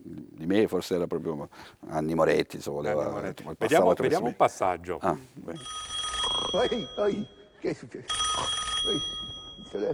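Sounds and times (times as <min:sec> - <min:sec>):
speech: 0:00.5 - 0:05.9, 0:06.5 - 0:09.9
old-fashioned telephone bell ringing: 0:05.6 - 0:09.9.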